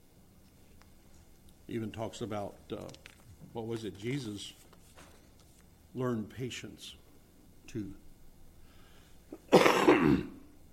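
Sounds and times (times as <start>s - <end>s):
speech: 1.7s - 4.6s, 6.0s - 7.0s, 7.7s - 8.0s, 9.3s - 10.4s
harsh cough: 9.3s - 10.4s.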